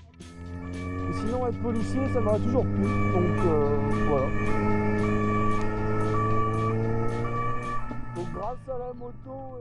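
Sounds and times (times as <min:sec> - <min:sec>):
low drone: 0:00.0 - 0:09.6
police sirens wailing: 0:00.0 - 0:09.6.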